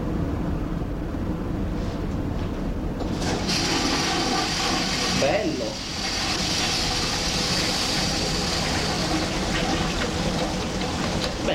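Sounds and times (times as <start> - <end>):
steady low mechanical rumble: 0.0 - 11.5
ferry toilet flushing with sea water: 3.0 - 11.5.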